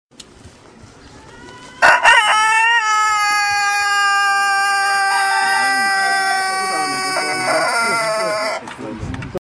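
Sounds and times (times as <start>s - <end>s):
rooster: 1.2s - 8.7s.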